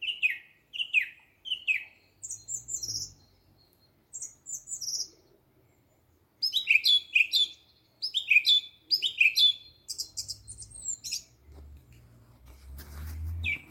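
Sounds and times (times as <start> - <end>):
bird whistling and twittering: 0.0 - 5.2, 6.4 - 11.3, 13.4 - 13.7.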